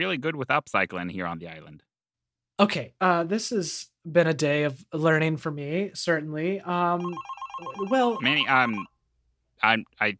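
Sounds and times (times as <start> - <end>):
speech: 0.0 - 1.9, 2.6 - 8.9, 9.6 - 10.1
telephone ringing with electronic warble: 7.0 - 8.9.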